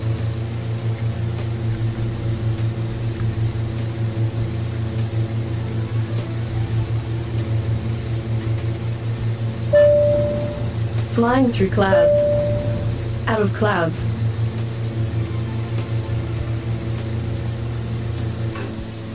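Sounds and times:
old-style microwave oven humming while making coffee with chocolate milk: 0:00.0 - 0:19.1
sharp beep: 0:09.8 - 0:10.7, 0:11.9 - 0:12.9
speech: 0:11.2 - 0:12.2, 0:13.3 - 0:14.1.

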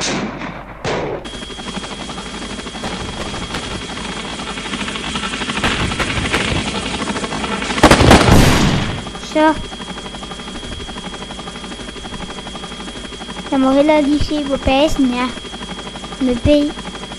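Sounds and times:
thin high whine: 0:01.2 - 0:07.8, 0:08.8 - 0:17.1
video-game helicopter combat gunfire: 0:02.8 - 0:04.2, 0:05.5 - 0:09.0
speech: 0:09.4 - 0:09.8, 0:13.5 - 0:15.4, 0:16.2 - 0:16.8.

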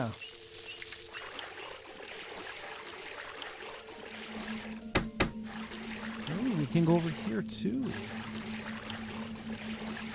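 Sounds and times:
speech: 0:00.0 - 0:00.2, 0:06.7 - 0:08.3
deep water pouring and trickling: 0:00.0 - 0:10.1
sharp knocks: 0:04.9 - 0:05.4.

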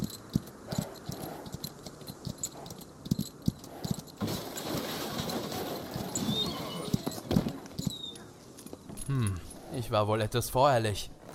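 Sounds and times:
horses' hooves clip-clopping on hard ground: 0:00.0 - 0:11.3
speech: 0:09.9 - 0:11.2.

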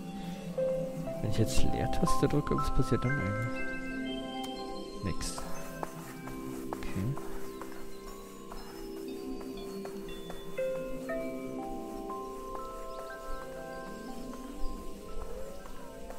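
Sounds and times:
birds chirping outdoors: 0:00.0 - 0:16.1
speech: 0:01.2 - 0:03.8, 0:05.0 - 0:05.5.

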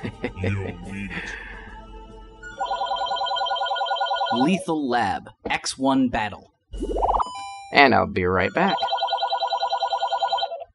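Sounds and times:
laughter: 0:00.0 - 0:01.6
speech: 0:00.4 - 0:01.4, 0:04.4 - 0:07.0, 0:07.7 - 0:08.9
telephone with rapid trilling electronic ring: 0:02.6 - 0:04.5, 0:08.7 - 0:10.6.

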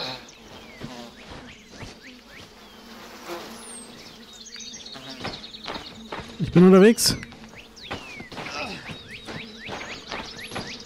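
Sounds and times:
angry bees buzzing around a hive: 0:00.0 - 0:10.8
speech: 0:06.6 - 0:07.3.

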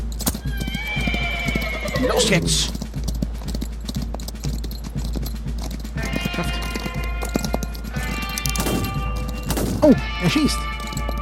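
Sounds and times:
horse hooves galloping: 0:00.0 - 0:11.2
loud horse whinny: 0:00.4 - 0:02.8, 0:06.0 - 0:11.2
person shouting: 0:02.0 - 0:02.7
speech: 0:02.0 - 0:02.8, 0:09.8 - 0:10.7.

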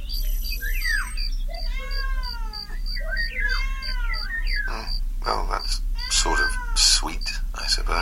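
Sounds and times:
low steady hum: 0:00.0 - 0:08.0
cat meowing: 0:01.0 - 0:07.2.

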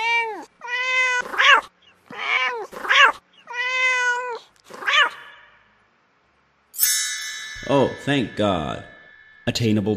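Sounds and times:
cat meows from a video game: 0:00.0 - 0:05.5
speech: 0:07.8 - 0:08.9, 0:09.5 - 0:09.9.

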